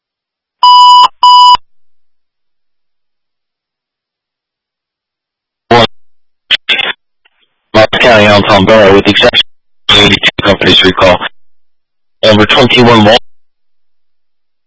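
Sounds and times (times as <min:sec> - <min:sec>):
loud electronic alarm beeps: 0:00.6 - 0:01.6
speech: 0:08.0 - 0:09.4, 0:10.0 - 0:11.4, 0:12.2 - 0:13.2.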